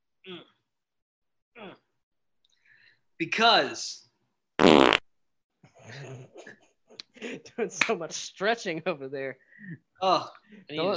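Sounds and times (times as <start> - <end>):
speech: 3.2 - 4.0, 7.2 - 10.9
loud buzzy fart: 4.6 - 5.0.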